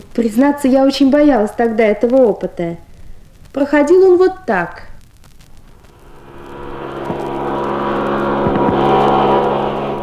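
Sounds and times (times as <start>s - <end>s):
speech: 0.2s - 2.8s, 3.6s - 4.9s
human centrifuge machine running: 5.6s - 10.0s.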